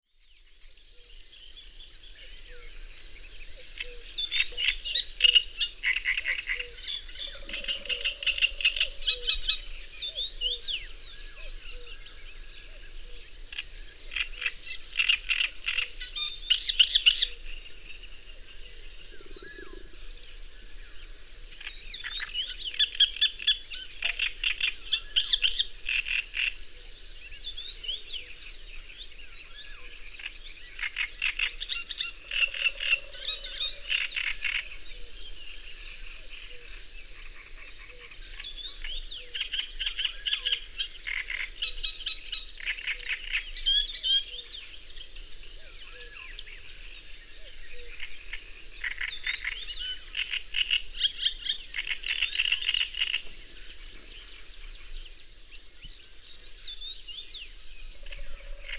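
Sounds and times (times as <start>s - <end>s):
great reed warbler Acrocephalus arundinaceus singing: 0.8s - 58.7s.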